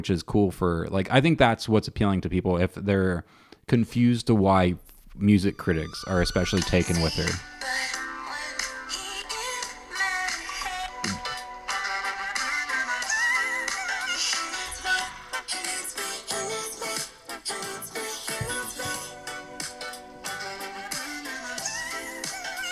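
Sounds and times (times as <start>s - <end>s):
speech: 0.0s - 8.0s
bright busy pop song played from a phone: 5.4s - 22.6s.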